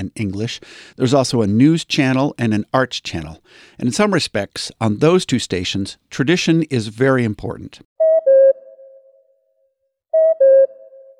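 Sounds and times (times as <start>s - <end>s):
speech: 0.0s - 7.9s
cuckoo call radio time signal: 8.0s - 9.5s, 10.1s - 11.1s.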